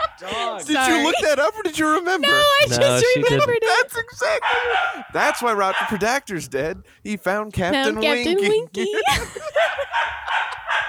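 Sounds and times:
laughter: 0.0s - 5.0s, 7.7s - 10.8s
speech: 0.2s - 10.5s
dog barking with sharp high-pitched yaps: 4.2s - 6.2s, 9.6s - 10.8s.

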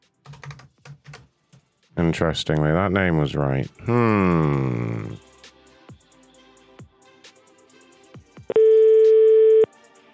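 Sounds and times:
speech: 2.0s - 5.2s
French telephone line tone beep: 8.5s - 9.7s.

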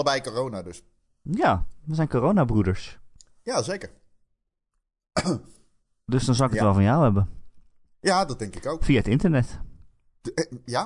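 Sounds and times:
speech: 0.0s - 4.0s, 5.2s - 7.4s, 8.0s - 10.8s
harsh cough: 5.2s - 5.6s.

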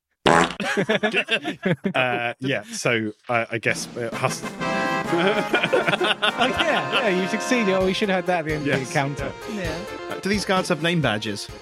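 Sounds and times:
fart sound effect played from a soundboard: 0.2s - 0.6s
laughter: 0.6s - 3.1s, 5.0s - 7.5s
speech: 0.7s - 11.6s.

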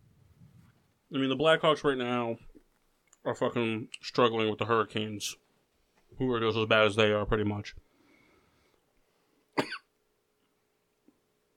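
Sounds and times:
speech: 1.1s - 2.5s, 3.2s - 5.4s, 6.1s - 7.8s
single short sharp cough: 9.6s - 9.9s.

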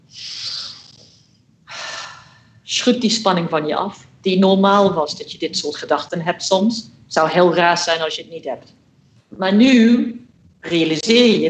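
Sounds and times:
deep breath in and out: 0.1s - 2.6s
speech: 2.7s - 11.4s.

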